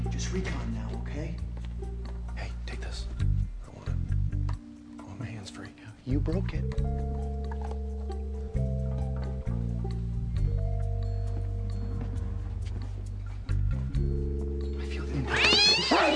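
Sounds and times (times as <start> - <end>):
steady low droning music bed: 0.0 - 15.4
speech: 0.3 - 1.9, 6.1 - 7.4
cat yowling: 15.3 - 16.1.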